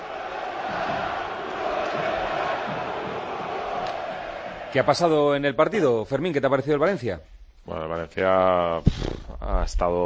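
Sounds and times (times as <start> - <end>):
football fans in a stadium chanting in unison in protest: 0.0 - 5.1
speech: 4.7 - 10.0.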